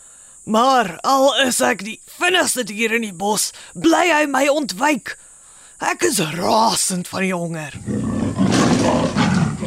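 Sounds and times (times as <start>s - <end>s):
speech: 0.5s - 8.1s
leopard roaring with a deep rasping growl: 7.8s - 9.6s.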